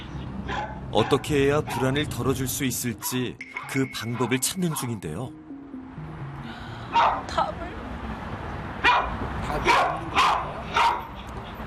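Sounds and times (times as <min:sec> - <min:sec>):
dog barking in a building: 0:00.4 - 0:02.0, 0:04.1 - 0:05.0, 0:06.9 - 0:07.3, 0:08.8 - 0:11.2
speech: 0:00.5 - 0:05.4, 0:06.9 - 0:07.8, 0:09.0 - 0:10.2.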